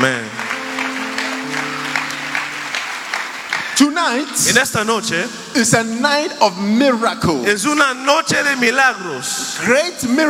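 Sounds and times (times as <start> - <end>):
audience applause at an evangelistic miracle healing campaign in Nicaragua: 0.0 - 4.6
speech: 3.8 - 10.2.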